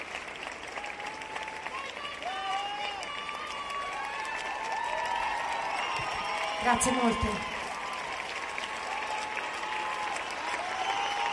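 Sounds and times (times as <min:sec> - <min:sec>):
audience applause: 0:00.0 - 0:11.3
speech: 0:06.6 - 0:07.5.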